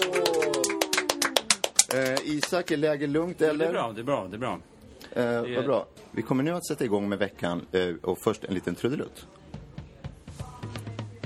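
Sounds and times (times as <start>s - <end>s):
scattered applause welcoming a stand-up comedian: 0.0s - 2.7s
speech: 1.9s - 9.4s.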